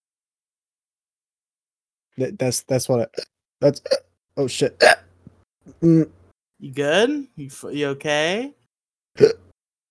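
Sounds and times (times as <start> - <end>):
speech: 2.2 - 5.0, 5.6 - 8.6, 9.2 - 9.4
person fake hiccuping for comedic effect: 3.2 - 4.0, 4.8 - 5.1, 5.7 - 6.2, 9.2 - 9.5.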